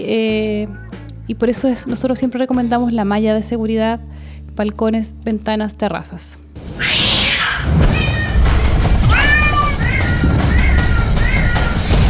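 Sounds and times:
speech: 0:00.0 - 0:07.2
cat meowing insistently: 0:06.8 - 0:11.9.

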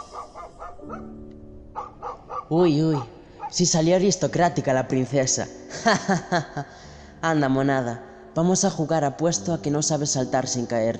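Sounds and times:
dog barking while playing: 0:00.0 - 0:01.1, 0:01.8 - 0:03.6
speech: 0:02.5 - 0:10.9
laughter: 0:05.7 - 0:06.7.

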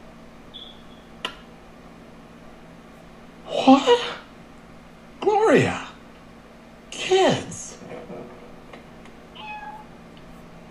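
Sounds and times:
steady hum: 0:00.0 - 0:10.6
speech: 0:03.7 - 0:04.1
cat meowing: 0:09.4 - 0:09.9.

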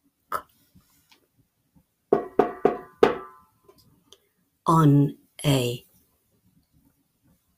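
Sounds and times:
knocking on a wooden door: 0:02.1 - 0:03.4
speech: 0:04.7 - 0:05.9.

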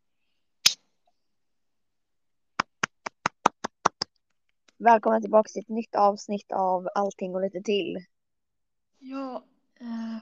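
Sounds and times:
sharp hand claps: 0:02.6 - 0:04.1
speech: 0:04.8 - 0:08.1, 0:09.0 - 0:10.1.

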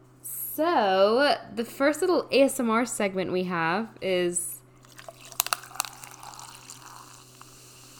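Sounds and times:
speech: 0:00.6 - 0:04.5
soft steady fizz of bubbles in sparkling pineapple water: 0:04.8 - 0:07.9
sparkling pineapple water pouring into a glass: 0:04.8 - 0:07.9.

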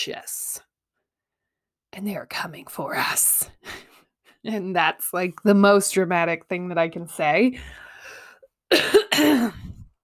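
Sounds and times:
speech: 0:00.0 - 0:00.7, 0:02.0 - 0:07.9, 0:08.7 - 0:09.6
person coughing: 0:08.7 - 0:09.8.

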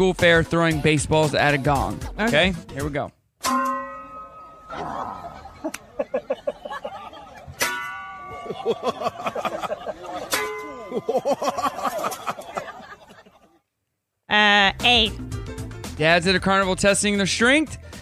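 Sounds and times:
speech: 0:00.0 - 0:03.6, 0:08.6 - 0:12.5, 0:14.3 - 0:15.4, 0:16.0 - 0:17.8
crowd chatter: 0:04.4 - 0:13.6
people laughing: 0:04.5 - 0:13.7
metal skillets hitting helmets of men dressed as knights: 0:07.6 - 0:08.3, 0:10.3 - 0:10.7.

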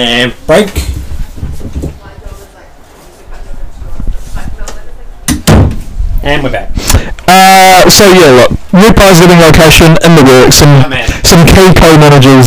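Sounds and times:
speech: 0:00.0 - 0:00.8, 0:06.2 - 0:12.4
door slamming shut: 0:05.3 - 0:05.9.

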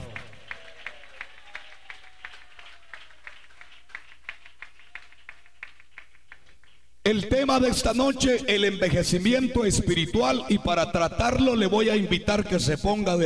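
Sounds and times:
audience clapping in unison: 0:00.0 - 0:06.9
speech: 0:07.1 - 0:13.2.

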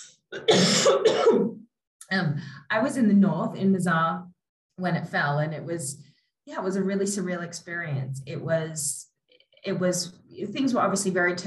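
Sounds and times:
throat clearing: 0:00.0 - 0:01.5
speech: 0:00.0 - 0:11.4
person coughing harshly: 0:00.4 - 0:01.5.

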